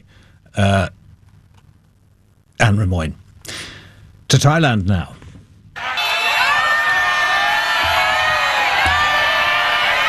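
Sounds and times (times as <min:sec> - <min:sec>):
speech: 0:00.6 - 0:01.0, 0:02.8 - 0:03.2, 0:04.4 - 0:05.2
large outdoor crowd in city streets cheering and whooping: 0:05.8 - 0:10.0.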